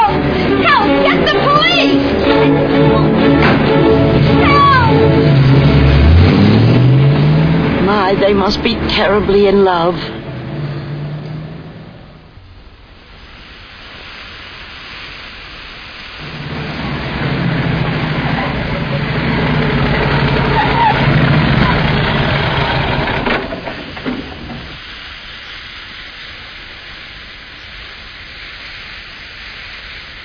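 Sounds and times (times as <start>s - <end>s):
overheated car engine idling: 0.0s - 13.1s, 16.2s - 24.9s
steam hissing from an overheated car engine: 0.0s - 30.2s
speech: 8.3s - 10.2s.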